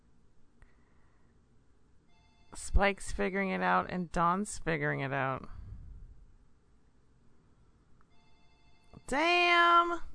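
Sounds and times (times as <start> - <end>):
steady low hiss: 0.0 - 10.1
phone ringing with bright electronic ringtone: 2.1 - 2.6, 8.1 - 9.1
speech: 2.8 - 5.6, 9.1 - 10.1.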